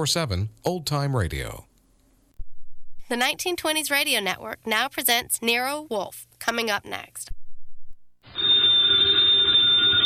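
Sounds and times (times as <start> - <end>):
speech: 0.0 - 1.7, 3.1 - 7.4
telephone bell ringing: 8.2 - 10.0.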